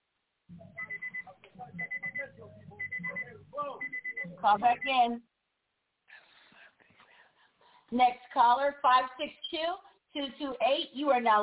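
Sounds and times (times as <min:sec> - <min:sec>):
low background noise on a phone line: 0:00.0 - 0:11.4
alarm beeping in the background of a caller's phone line: 0:00.6 - 0:05.1
speech: 0:04.4 - 0:05.3, 0:07.9 - 0:11.4.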